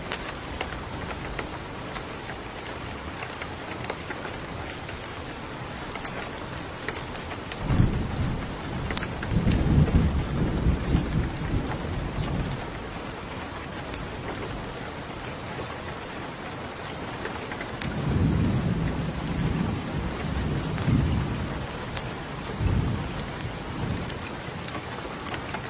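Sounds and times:
night rain falling in the far mountains: 0:00.0 - 0:25.6
thunder rumbling in the mountains: 0:07.4 - 0:13.2, 0:17.8 - 0:24.8.

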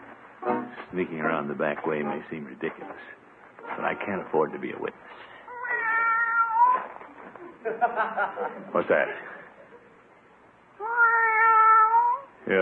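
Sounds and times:
speech: 0:00.9 - 0:05.3, 0:07.6 - 0:09.4, 0:12.4 - 0:12.6
cat meowing: 0:05.5 - 0:07.0, 0:10.8 - 0:12.4
laughter: 0:07.3 - 0:10.0.

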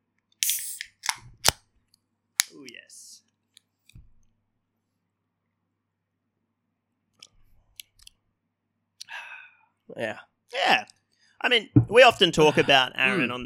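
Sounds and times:
bright fizzing hiss of opened beer can: 0:00.4 - 0:00.9
speech: 0:10.0 - 0:13.4.

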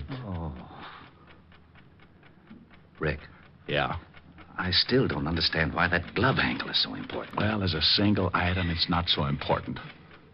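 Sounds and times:
clock ticking in a quiet room: 0:00.0 - 0:10.3
faint hum: 0:00.0 - 0:10.3
speech: 0:03.0 - 0:10.0.

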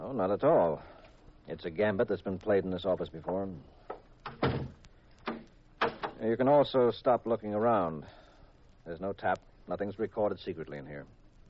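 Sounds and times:
speech: 0:00.1 - 0:03.8, 0:06.2 - 0:08.2, 0:08.8 - 0:11.2
office door thudding shut: 0:04.2 - 0:06.2.

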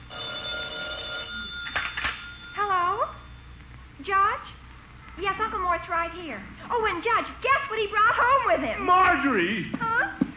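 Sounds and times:
telephone bell ringing: 0:00.1 - 0:02.6
speech: 0:05.2 - 0:10.2.

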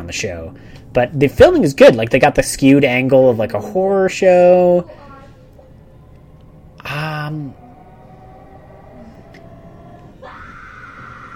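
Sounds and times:
faint rising hum: 0:00.0 - 0:11.3
steady low rumble: 0:00.0 - 0:11.3
speech: 0:00.1 - 0:05.0
woman screaming in a TV show clip: 0:07.6 - 0:11.3.

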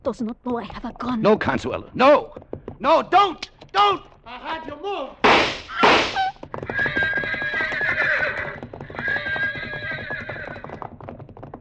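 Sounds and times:
speech: 0:00.0 - 0:07.0
horse hooves pounding: 0:01.3 - 0:11.6
sharp broadband bursts: 0:05.2 - 0:06.3
pack horses whinnying and neighing: 0:05.5 - 0:11.2.

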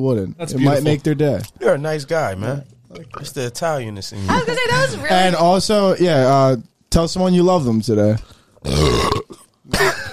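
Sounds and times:
speech: 0:00.0 - 0:10.0
faint gulp: 0:08.6 - 0:09.7
loud burp: 0:08.6 - 0:10.0.

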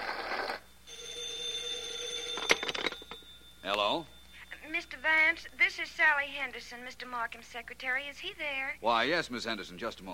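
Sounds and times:
telephone ringing: 0:00.0 - 0:07.2
speech: 0:05.1 - 0:10.1.

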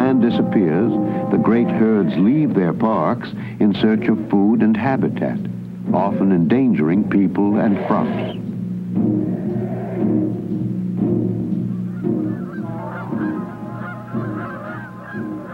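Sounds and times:
flock of migrating geese honking: 0:00.0 - 0:03.2, 0:05.9 - 0:10.6, 0:11.5 - 0:15.5
speech: 0:00.3 - 0:08.4, 0:09.0 - 0:09.4.

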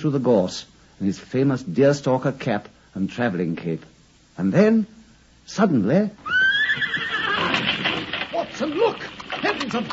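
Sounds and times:
speech: 0:00.0 - 0:07.0, 0:09.7 - 0:09.9
horse pulling an empty trap whinnying: 0:06.2 - 0:09.4.

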